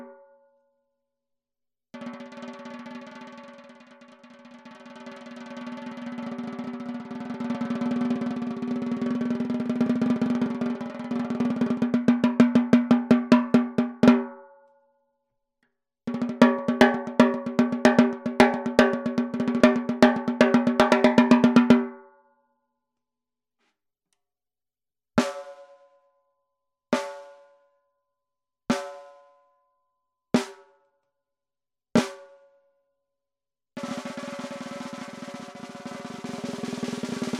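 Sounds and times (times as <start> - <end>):
Pearl maple 12x7 snare drum: 5.3 - 14.3, 16.1 - 21.9, 25.2 - 25.8, 28.7 - 29.1, 30.4 - 30.6, 32.0 - 32.4, 33.8 - 37.3.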